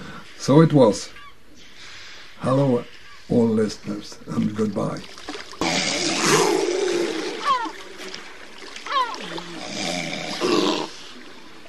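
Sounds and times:
speech: 0.4s - 1.2s, 2.4s - 5.2s
grey seals moaning on a beach on Gotland in the Baltic Sea: 5.6s - 11.5s.

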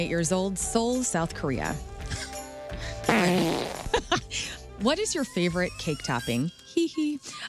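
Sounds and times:
speech: 0.0s - 7.4s
fart sound effect: 3.1s - 4.0s.

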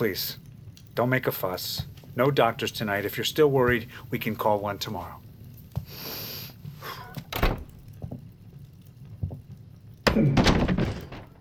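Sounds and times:
speech: 0.0s - 0.4s, 1.0s - 5.2s
door thunk and knocks: 7.2s - 7.8s, 10.1s - 11.4s.

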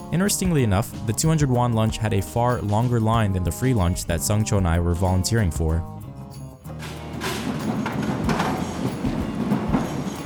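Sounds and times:
speech: 0.1s - 6.0s
train wheels thudding over rail joints: 6.7s - 10.2s
train rumbling by overhead on tracks: 7.0s - 10.2s.

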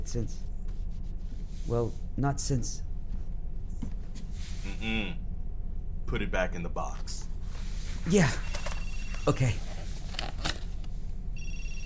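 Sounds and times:
low rumble: 0.0s - 11.4s
speech: 0.1s - 0.6s, 1.6s - 2.9s, 4.8s - 5.2s, 6.1s - 7.2s, 8.0s - 8.5s, 9.2s - 9.7s
phone ringing with a bright electronic ringtone: 8.4s - 9.6s, 11.4s - 11.8s.

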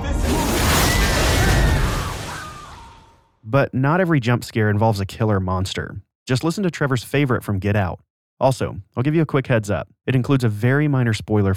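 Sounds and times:
shark bursting out of a water tank with a low crashing roar: 0.0s - 3.2s
speech: 3.5s - 11.5s.

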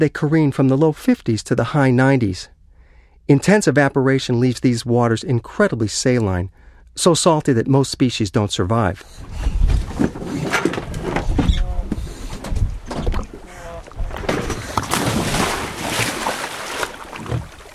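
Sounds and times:
speech: 0.0s - 2.6s, 3.3s - 10.6s
steady wind off Saadiyat Island, Abu Dhabi: 9.0s - 15.9s
lapping highly saline water off Saadiyat Island, Abu Dhabi: 9.1s - 17.7s
divers splashing from a boat into saline water: 11.8s - 17.7s.

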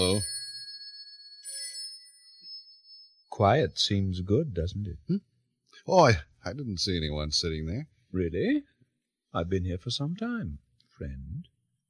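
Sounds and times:
telephone bell ringing: 0.0s - 3.2s
speech: 3.4s - 8.7s, 9.3s - 11.5s.

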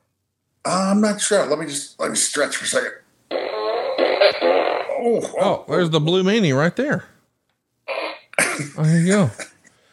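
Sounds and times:
speech: 0.7s - 3.4s, 5.0s - 7.1s, 8.6s - 9.5s
buzzy electronic fart sound from a toy blaster: 3.3s - 5.6s, 7.8s - 8.5s.

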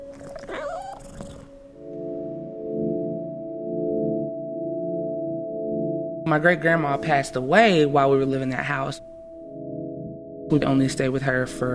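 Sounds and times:
cat yowling: 0.0s - 1.8s
low droning tone: 1.8s - 10.6s
speech: 6.3s - 9.1s, 10.5s - 11.7s.

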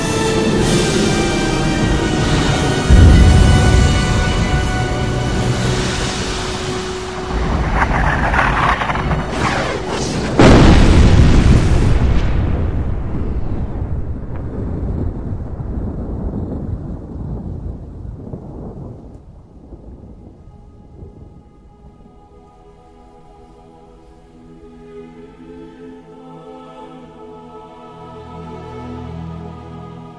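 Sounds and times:
heavy blast: 1.0s - 17.6s
massive catastrophic explosion with deep rumbling booms: 2.2s - 20.2s.

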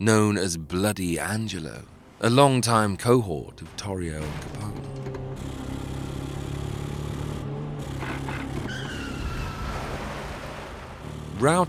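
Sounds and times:
speech: 0.0s - 4.8s, 11.4s - 11.6s
high whining tire screech of skidding cars: 3.6s - 11.6s
car engines roaring past in a car chase: 4.1s - 11.6s.

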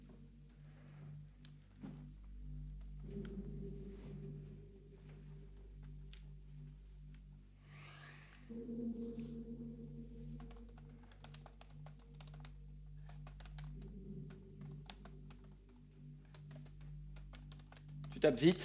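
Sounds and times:
low steady hum: 0.0s - 18.6s
typing on a computer keyboard: 10.4s - 18.6s
speech: 18.2s - 18.6s.

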